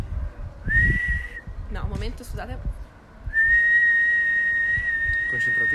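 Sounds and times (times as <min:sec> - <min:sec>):
person whistling a long high note with too much air: 0:00.7 - 0:01.5, 0:03.3 - 0:05.7.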